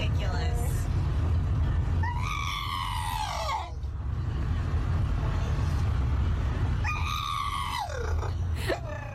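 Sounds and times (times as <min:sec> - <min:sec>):
low rumble: 0:00.0 - 0:09.1
Staffordshire bull terrier screaming: 0:02.0 - 0:03.8, 0:06.8 - 0:09.1.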